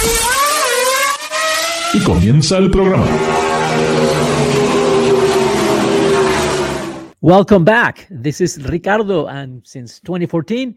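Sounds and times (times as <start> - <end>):
car engine revving as it accelerates: 0.0 - 7.2
speech: 2.0 - 4.2, 7.2 - 10.7.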